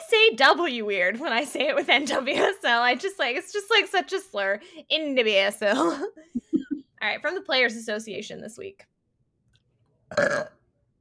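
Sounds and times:
speech: 0.3 - 8.9, 10.1 - 10.6
loud burp: 10.1 - 10.6.

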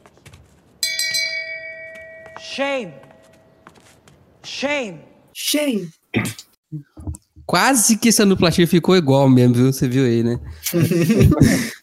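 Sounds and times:
small bell struck once: 0.8 - 3.6
speech: 2.4 - 3.1, 4.6 - 6.9, 7.5 - 11.8
laughter: 10.6 - 11.8.

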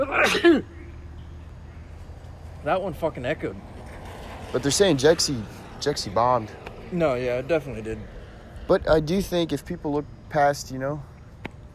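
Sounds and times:
person sneezing: 0.0 - 0.7
speech: 0.0 - 0.8, 2.6 - 3.8, 4.5 - 11.1.

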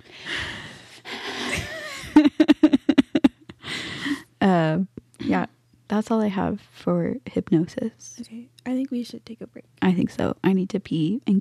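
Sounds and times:
breathing into a microphone: 0.0 - 1.6, 3.6 - 4.3
laughter: 1.2 - 3.6
speech: 4.4 - 11.3.

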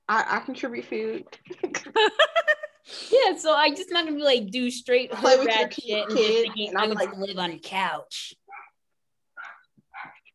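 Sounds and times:
speech: 0.1 - 8.4
dog barking: 8.5 - 8.8, 9.4 - 10.3.

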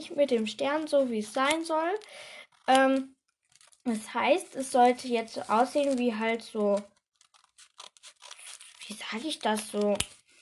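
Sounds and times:
speech: 0.0 - 3.2, 3.8 - 6.9, 8.9 - 10.2
scissors cutting a paper bag: 1.4 - 2.9, 3.5 - 3.8, 4.8 - 10.2.

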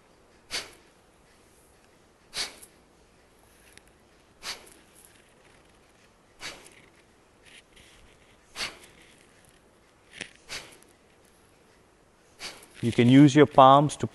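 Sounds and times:
rapid forceful exhalations through the nose: 4.4 - 4.9, 6.4 - 7.0, 8.5 - 9.2, 10.3 - 10.9, 12.3 - 12.9
speech: 12.8 - 14.1.

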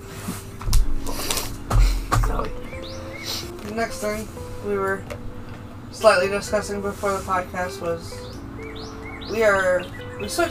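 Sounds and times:
bird chirping: 1.8 - 6.7, 7.7 - 10.4
speech: 3.8 - 5.2, 6.0 - 8.2, 9.3 - 10.4.

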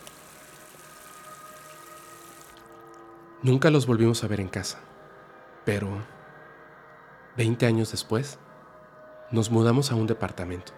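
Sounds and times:
water running from a sink tap: 0.0 - 3.0
speech: 3.4 - 5.0, 5.6 - 6.2, 7.4 - 8.5, 9.3 - 10.7.

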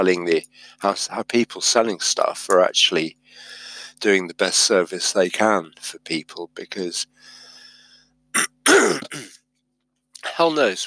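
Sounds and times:
speech: 0.0 - 7.4, 8.3 - 9.3, 10.3 - 10.8
person coughing or clearing throat: 8.4 - 9.4.

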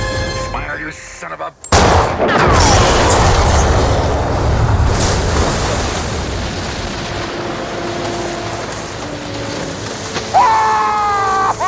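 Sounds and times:
speech: 0.9 - 3.2
rifle shot: 1.7 - 3.8
loud air tank explosion: 1.8 - 7.2
rumbling debris: 1.8 - 8.2
heavy churning water: 3.4 - 11.6.

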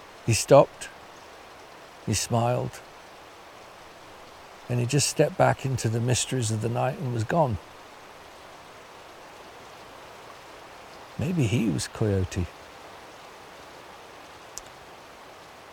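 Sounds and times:
water flowing in an old river: 0.0 - 15.7
speech: 0.3 - 1.0, 2.1 - 2.9, 4.7 - 7.7, 11.2 - 12.6.

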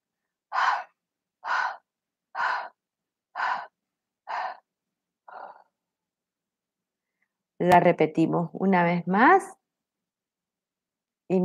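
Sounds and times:
exhalations in a breathing exercise: 0.5 - 4.7, 5.3 - 5.8
speech: 7.6 - 9.6.

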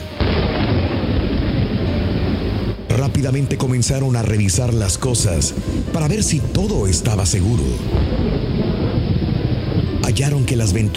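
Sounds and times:
deep rumbling thunder in a violent thunderstorm at night at a farm: 0.0 - 10.9
heavy rain in a violent thunderstorm at night at a farm: 0.0 - 10.9
speech: 3.2 - 8.6, 10.2 - 10.9.

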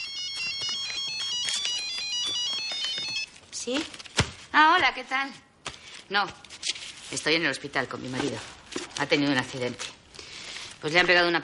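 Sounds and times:
mobile phone ringing with a bright repeating electronic melody: 0.0 - 3.4
speech: 3.6 - 5.4, 6.1 - 6.4, 7.1 - 10.0, 10.8 - 11.4.

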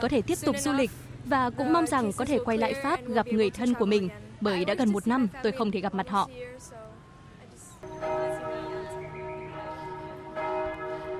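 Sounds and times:
speech: 0.0 - 6.8
church bells ringing in Vietnam at Christmas time: 7.8 - 11.1.

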